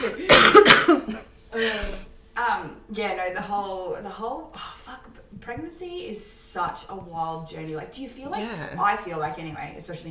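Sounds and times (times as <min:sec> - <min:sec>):
harsh raspy coughing: 0:00.0 - 0:01.3
speech: 0:00.0 - 0:02.0, 0:03.0 - 0:04.7, 0:05.3 - 0:10.0
voice making throaty wavering vocal sounds: 0:08.3 - 0:08.8.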